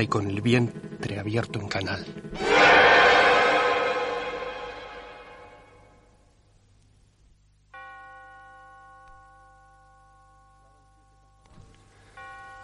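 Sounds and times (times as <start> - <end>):
speech: 0.0 - 2.9
large bell tolling: 2.4 - 6.0.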